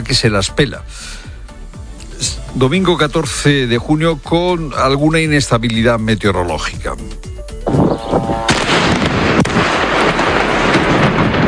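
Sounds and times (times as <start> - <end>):
speech: 0.0 - 1.3, 2.2 - 7.3
explosions from Israeli aerial bombardment over Lebanon: 7.7 - 11.4
sharp crack: 8.5 - 11.4.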